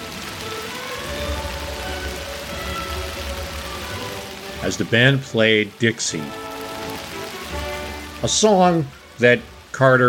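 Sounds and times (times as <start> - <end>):
steady rain over a town square: 0.0 - 10.0
speech: 4.6 - 6.4, 8.2 - 10.0.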